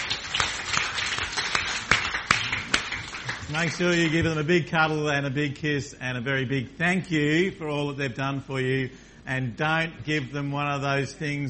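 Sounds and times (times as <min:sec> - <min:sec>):
audience applauding: 0:00.0 - 0:04.5
speech: 0:03.5 - 0:11.4.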